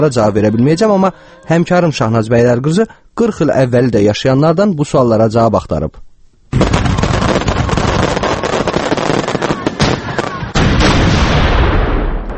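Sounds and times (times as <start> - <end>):
speech: 0.0 - 6.6
fireworks cracks and booms on a July evening in Baku during an official anniversary celebration: 6.5 - 12.3.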